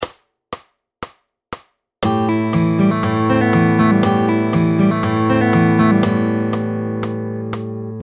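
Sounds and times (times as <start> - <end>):
fingerstyle picking pattern: 2.0 - 8.0.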